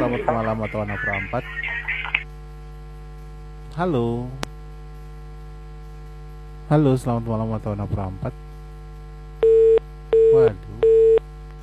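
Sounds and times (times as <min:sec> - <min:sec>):
speech: 0:00.0 - 0:01.9, 0:03.8 - 0:04.5, 0:06.7 - 0:08.4, 0:10.3 - 0:10.7
low steady hum: 0:00.0 - 0:11.6
telephone busy signal after a call disconnects: 0:09.4 - 0:11.2.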